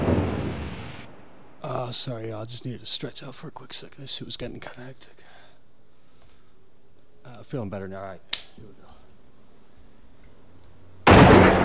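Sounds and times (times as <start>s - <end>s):
loud boom rolling into a rumbling roar: 0.0s - 1.6s, 11.1s - 11.6s
speech: 1.8s - 5.3s, 7.2s - 8.9s.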